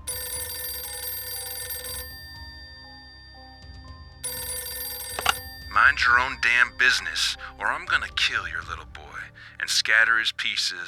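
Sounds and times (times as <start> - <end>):
telephone bell ringing: 0.0 - 8.1
speech: 5.8 - 9.0, 9.6 - 10.8.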